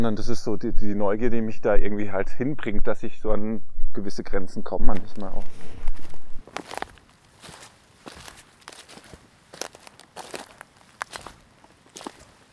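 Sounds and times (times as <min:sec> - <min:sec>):
speech: 0:00.0 - 0:05.9, 0:06.6 - 0:06.9
footsteps of hikers crunching on a trail between forest and a broad valley: 0:05.0 - 0:12.5.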